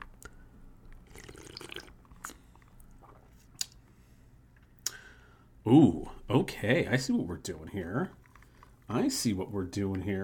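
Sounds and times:
sipping and swallowing a cocktail: 0:01.0 - 0:03.8
speech: 0:05.7 - 0:08.2, 0:08.9 - 0:10.2.

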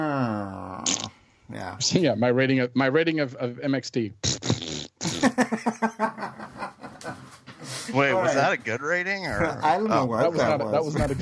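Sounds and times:
breathy mouth raspberry: 0:00.0 - 0:01.2, 0:04.2 - 0:05.4
sputtering voiced mouth fart imitation: 0:00.7 - 0:01.2, 0:04.2 - 0:05.4
speech: 0:01.6 - 0:04.3, 0:07.9 - 0:11.2
laughter: 0:05.0 - 0:07.8.

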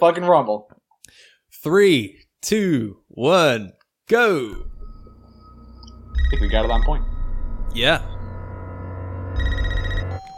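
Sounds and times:
speech: 0:00.0 - 0:04.7, 0:06.2 - 0:07.1, 0:07.7 - 0:08.1
steady low hum: 0:04.6 - 0:10.2
old-fashioned telephone bell ringing: 0:09.3 - 0:10.3.

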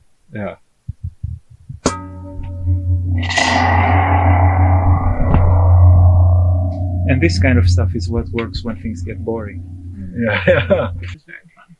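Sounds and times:
speech: 0:00.3 - 0:00.6, 0:07.1 - 0:11.4
sharp struck tone ringing: 0:01.9 - 0:11.1
dense gritty distorted drone drenched in reverb: 0:01.9 - 0:11.2.

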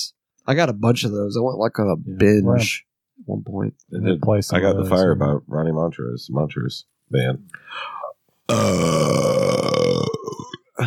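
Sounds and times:
speech: 0:00.0 - 0:09.4
loud deep gravelly burp: 0:08.5 - 0:10.8.

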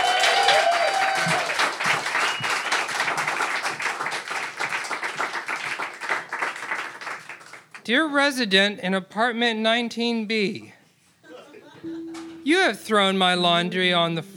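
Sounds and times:
person whooping: 0:00.0 - 0:01.6
audience applauding for an improv performer: 0:00.0 - 0:07.8
speech: 0:07.9 - 0:10.8, 0:12.4 - 0:14.3
laughter: 0:11.2 - 0:12.4.

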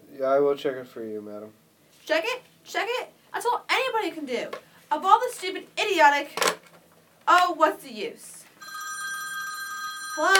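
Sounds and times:
speech: 0:00.2 - 0:06.7, 0:07.3 - 0:08.4, 0:10.2 - 0:10.3
telephone bell ringing: 0:08.6 - 0:10.3.

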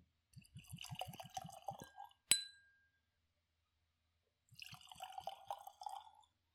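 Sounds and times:
111 proof whiskey glugging and splashing into a glass: 0:00.4 - 0:02.3, 0:04.5 - 0:06.4
glass clink: 0:02.3 - 0:02.8.

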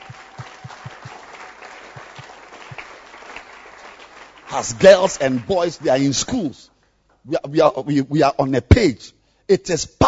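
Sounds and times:
audience clapping at a church gathering: 0:00.0 - 0:06.6
speech: 0:04.5 - 0:10.0.

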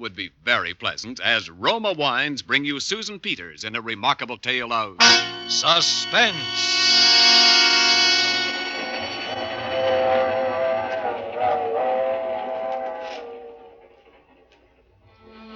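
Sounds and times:
speech: 0:00.0 - 0:07.6
train whistle wailing: 0:05.0 - 0:14.0, 0:15.2 - 0:15.5
moving train rumbling and rolling clatter: 0:05.0 - 0:15.1.

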